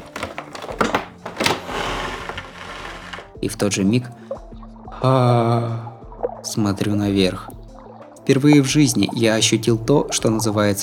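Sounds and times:
door creaking open: 0.0s - 3.3s
speech: 3.4s - 4.3s, 5.0s - 7.5s, 8.3s - 10.8s.

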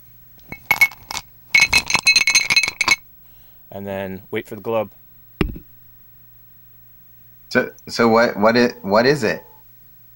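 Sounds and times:
glasses clinking together in a toast: 0.4s - 3.0s
speech: 3.7s - 5.5s, 7.5s - 9.5s.

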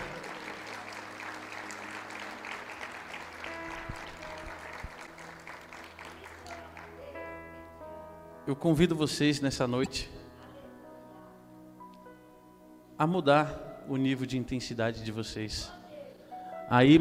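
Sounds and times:
congregation clapping: 0.0s - 7.4s
sustained organ or keyboard chords: 0.0s - 15.1s
speech: 8.5s - 10.2s, 13.0s - 15.8s, 16.7s - 16.9s.

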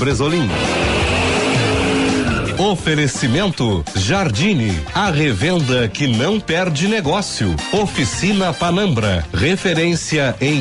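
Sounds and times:
speech: 0.0s - 0.8s, 2.6s - 10.5s
racing car engines revving: 0.0s - 3.0s
racing car tires squealing: 0.3s - 3.3s.

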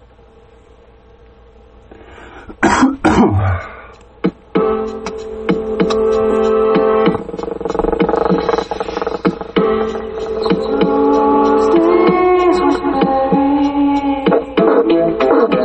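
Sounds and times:
sustained droning hum: 0.0s - 15.6s
heavy coughing after smoking: 2.2s - 4.0s
sharp clicks and rasping sounds: 4.9s - 12.8s.

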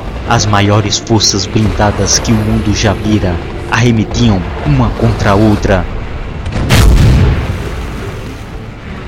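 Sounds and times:
low roar: 0.0s - 9.0s
speech: 0.3s - 6.8s
heavy tank cannon blast: 6.4s - 8.2s.

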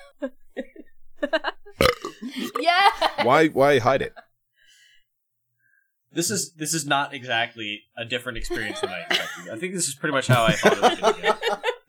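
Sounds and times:
laughter: 0.0s - 4.2s, 8.4s - 11.8s
speech: 0.2s - 0.4s, 3.2s - 4.2s, 6.1s - 11.7s
person burping: 1.8s - 2.9s.

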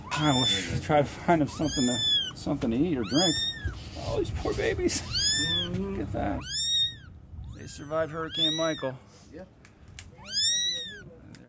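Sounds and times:
kitten meowing: 0.0s - 8.9s, 10.1s - 11.2s
speech: 0.2s - 6.6s, 7.7s - 9.6s.

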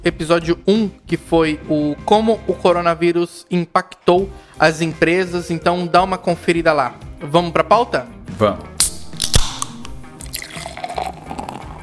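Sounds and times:
speech: 0.0s - 8.8s
cold water being poured: 9.5s - 11.8s.

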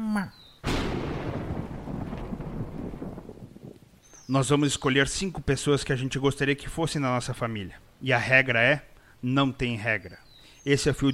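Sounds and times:
speech: 0.1s - 0.8s, 4.3s - 11.1s
thunder rumbling on a rainy night: 0.6s - 4.0s.

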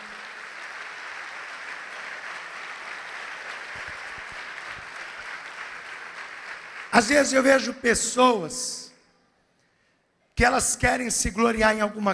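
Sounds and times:
audience applauding at a church service: 0.0s - 7.5s
speech: 7.0s - 8.9s, 10.4s - 12.1s.

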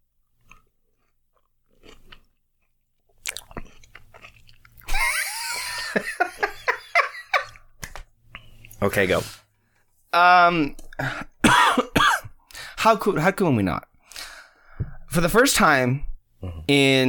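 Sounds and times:
wet chewing of an orange with juicy squelches and crisp snaps: 0.4s - 4.9s
laughter: 4.9s - 7.6s
speech: 8.8s - 9.4s, 10.1s - 11.3s, 12.8s - 13.9s, 15.2s - 17.0s.

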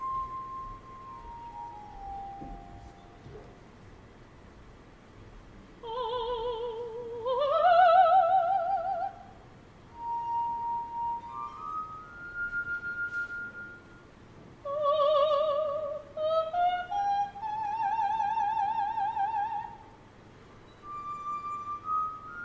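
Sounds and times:
glass harmonica playing sustained gliding notes: 0.0s - 3.2s, 9.9s - 14.1s, 20.7s - 22.4s
faint hiss: 0.0s - 22.4s.

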